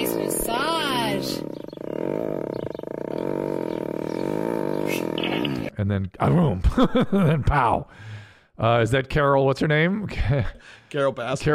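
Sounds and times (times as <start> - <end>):
tiger roaring: 0.0 - 5.7
speech: 5.8 - 11.5
laughter: 6.4 - 7.8.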